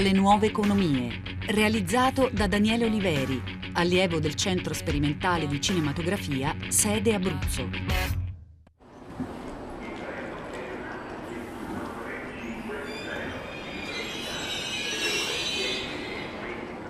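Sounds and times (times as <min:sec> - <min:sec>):
speech: 0:00.0 - 0:08.2
train rumbling at a station: 0:09.0 - 0:16.8
indistinct voices on a busy platform: 0:09.6 - 0:16.8.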